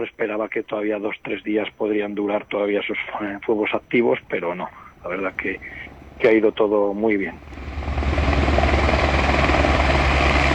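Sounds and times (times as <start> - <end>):
speech: 0.0 - 7.6
helicopters refueling from municipal swimming pool basin: 2.8 - 10.5.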